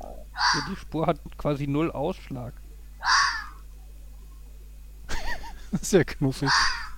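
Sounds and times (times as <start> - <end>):
faint raspy fox call: 0.4 - 0.8, 3.0 - 3.7, 6.4 - 6.9
speech: 0.6 - 3.2, 5.7 - 6.8
laughter: 5.1 - 5.9.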